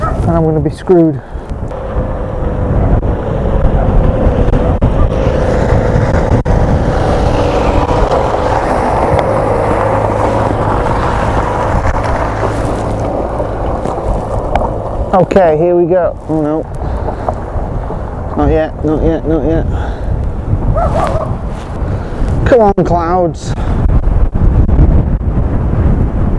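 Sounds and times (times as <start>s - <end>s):
gusts of wind buffeting the microphone: 0.0s - 26.3s
speech: 0.3s - 1.6s, 15.1s - 16.8s, 18.4s - 20.0s, 22.5s - 23.6s
big truck driving past: 1.7s - 15.2s.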